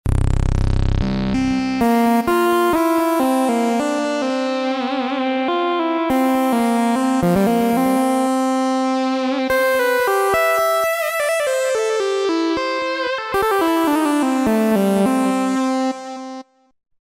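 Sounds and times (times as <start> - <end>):
Roland V-Synth synthesizer lead factory patch: 0.0 - 16.4.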